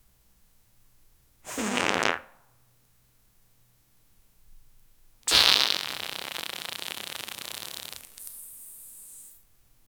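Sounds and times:
ultra short dry fart: 1.5s - 2.4s, 5.3s - 9.4s.

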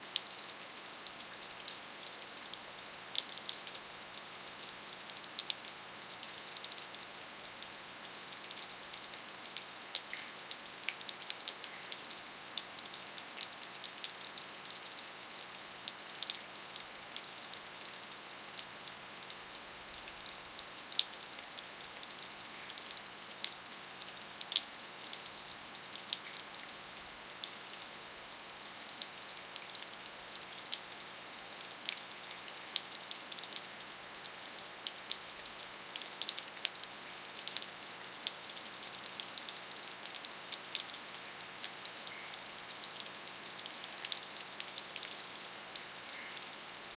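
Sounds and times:
light rain: 0.0s - 46.9s.

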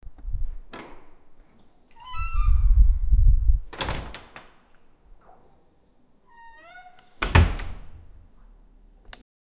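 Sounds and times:
large outdoor door: 0.6s - 3.0s, 3.6s - 8.6s.

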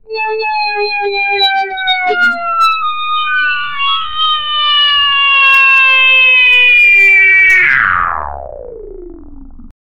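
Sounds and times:
trombone glissando down with wah-wah: 0.1s - 8.4s.

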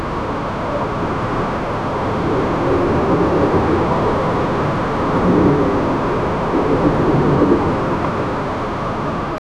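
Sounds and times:
ambient storm: 0.0s - 9.4s.

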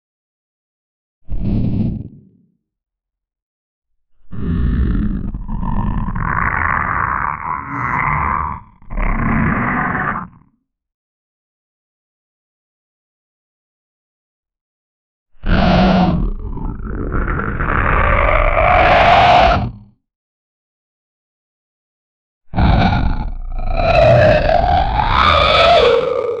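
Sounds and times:
grotesque monster sounds: 4.2s - 10.4s, 15.4s - 19.9s, 22.5s - 26.3s.

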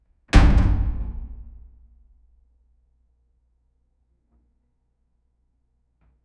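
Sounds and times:
fridge door slam with cold ambient echo: 0.4s - 1.7s.

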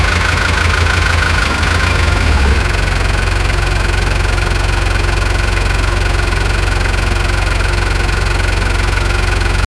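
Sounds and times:
1930 gasoline engine idling: 0.0s - 9.6s.

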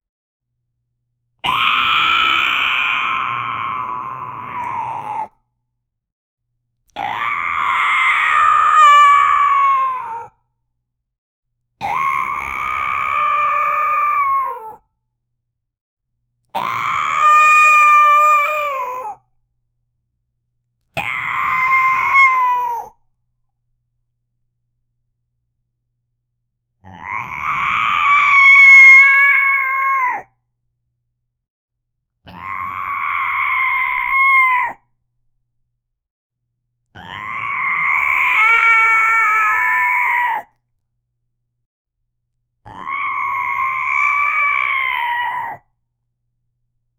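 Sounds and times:
big cat screaming: 1.4s - 5.4s, 6.9s - 10.4s, 11.8s - 14.8s, 16.6s - 19.2s, 21.0s - 23.0s, 26.8s - 30.3s, 32.3s - 34.8s, 37.0s - 40.5s, 42.7s - 45.6s.

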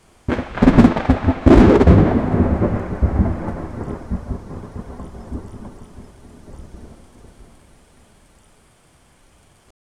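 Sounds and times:
loud thunderclap with a deep rumble: 0.3s - 7.6s.

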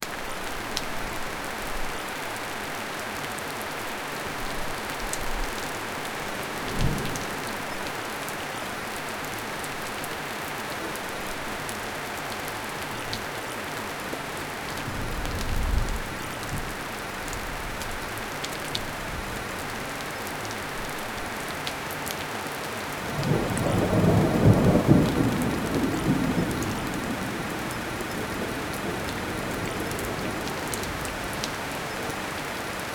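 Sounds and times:
rainfall: 0.0s - 32.9s
thunder: 6.6s - 7.4s, 23.2s - 30.5s.

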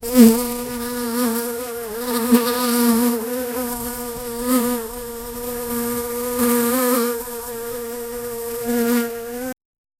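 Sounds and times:
fly buzzing with low droning hum: 0.0s - 9.6s.

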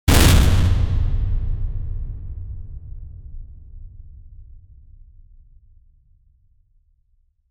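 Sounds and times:
big heavy metal impact: 0.1s - 2.2s.

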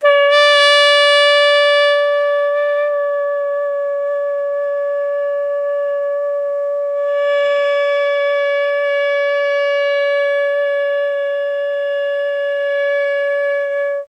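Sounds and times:
alto saxophone long tone: 0.0s - 14.1s.

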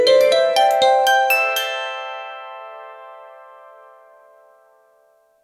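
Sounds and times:
magical harp arpeggio: 0.2s - 4.5s.

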